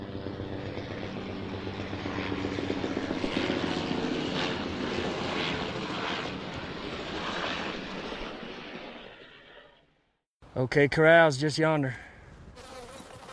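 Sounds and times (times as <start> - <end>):
arriving helicopters, rotor chop and engine whine overhead: 0.0 - 10.1
speech: 10.6 - 12.0.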